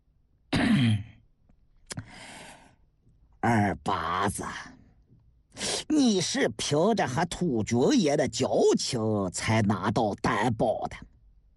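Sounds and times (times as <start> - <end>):
light cough: 0.5 - 1.1
breathy exhale: 1.9 - 2.8
speech: 3.4 - 4.8, 6.0 - 11.1.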